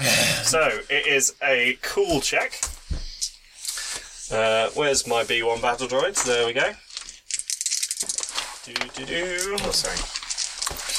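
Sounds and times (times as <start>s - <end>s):
speech: 0.0s - 2.8s, 4.3s - 6.8s, 8.7s - 10.2s
dice rattling for an initiative roll: 6.9s - 10.9s.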